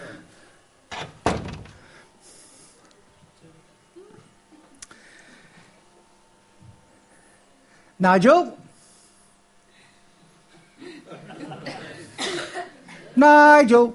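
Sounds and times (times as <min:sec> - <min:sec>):
room hum: 0:00.0 - 0:13.9
door being pushed shut: 0:00.9 - 0:01.9
speech: 0:08.0 - 0:08.6, 0:13.2 - 0:13.9
laughter: 0:10.6 - 0:13.2.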